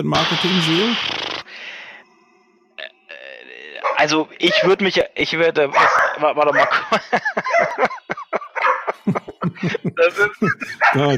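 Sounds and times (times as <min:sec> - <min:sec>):
speech: 0:00.0 - 0:01.2, 0:04.0 - 0:08.2, 0:09.1 - 0:11.1
small guard dog barking in sharp loud yaps: 0:05.8 - 0:06.8
laughter: 0:06.5 - 0:11.1.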